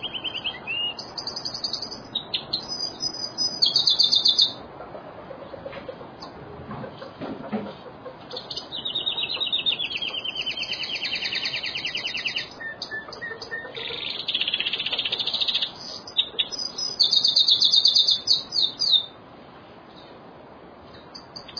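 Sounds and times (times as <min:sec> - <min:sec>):
bird song with long high trilled phrases: 0:00.0 - 0:04.6, 0:08.3 - 0:19.2, 0:21.0 - 0:21.5
steady background noise: 0:00.0 - 0:21.5.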